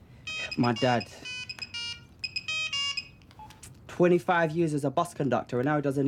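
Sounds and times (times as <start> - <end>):
faint beeps: 0.2 - 3.6
telephone ringing with an electronic ringtone: 0.2 - 3.6
speech: 0.6 - 1.3, 4.0 - 6.0.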